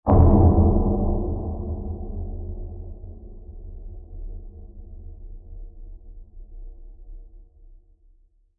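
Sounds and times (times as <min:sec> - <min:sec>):
low impact blast: 0:00.1 - 0:05.6.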